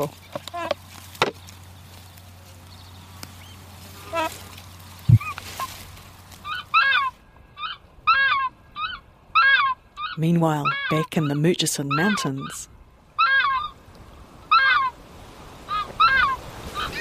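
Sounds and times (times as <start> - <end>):
speech: 0.0 - 0.5, 10.2 - 12.7
takahe calling: 3.4 - 5.8, 6.4 - 13.8, 14.5 - 15.0, 15.6 - 17.0.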